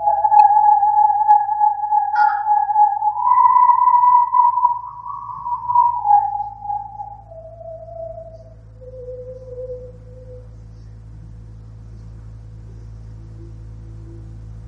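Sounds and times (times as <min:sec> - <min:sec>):
whirled corrugated hose whistling tone: 0:00.0 - 0:10.6
faint low hum: 0:00.0 - 0:14.6.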